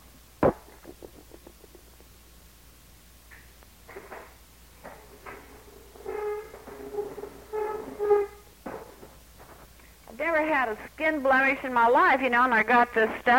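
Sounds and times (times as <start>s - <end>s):
chair being fetched and moved: 3.9s - 9.7s
speech: 10.4s - 13.3s.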